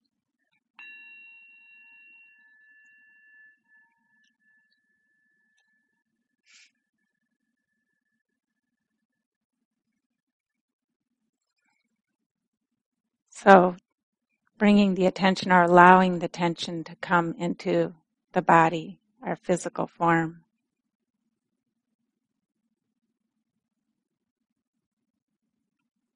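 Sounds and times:
small meditation bell ringing: 0:00.8 - 0:05.5
speech: 0:13.4 - 0:13.8, 0:14.6 - 0:20.4.

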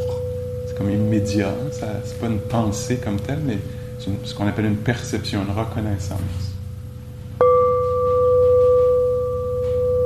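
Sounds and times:
meditation bell struck and ringing: 0:00.0 - 0:04.9, 0:07.4 - 0:10.0
low hum: 0:00.0 - 0:10.0
speech: 0:00.8 - 0:06.5.

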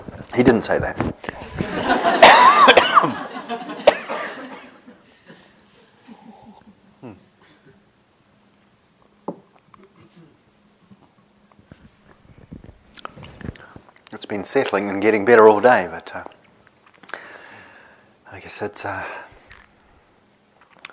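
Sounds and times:
speech: 0:00.4 - 0:02.5, 0:14.4 - 0:16.4, 0:18.5 - 0:19.2
laughter: 0:01.4 - 0:06.6
person coughing from a tickle in the throat: 0:02.2 - 0:03.2, 0:03.8 - 0:04.3.

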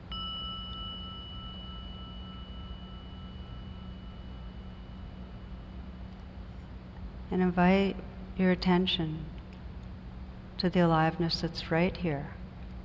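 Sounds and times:
meditation gong struck and ringing: 0:00.0 - 0:06.2
speech: 0:07.3 - 0:09.3, 0:10.6 - 0:12.4.

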